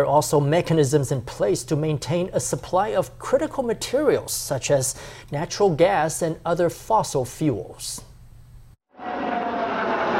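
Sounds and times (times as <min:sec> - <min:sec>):
speech: 0:00.0 - 0:08.1
military jets roaring overhead: 0:08.9 - 0:10.1.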